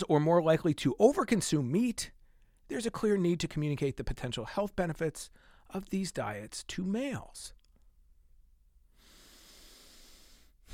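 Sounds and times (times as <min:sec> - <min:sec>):
speech: 0:00.0 - 0:07.6
deep breath: 0:05.3 - 0:05.7, 0:08.9 - 0:10.7.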